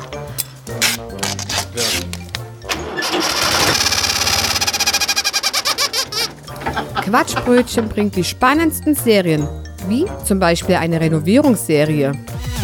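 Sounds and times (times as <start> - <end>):
engine cranking, starting and chugging: 2.7 - 8.4
rubber chicken on exhaust squawking: 3.1 - 6.4
speech: 7.1 - 12.3.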